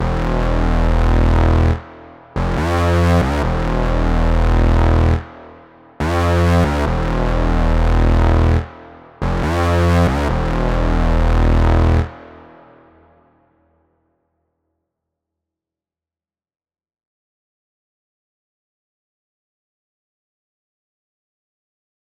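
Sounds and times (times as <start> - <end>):
Prophet 5 synth bass loop in E minor at 140 BPM: 0.0 - 5.4, 6.0 - 12.2.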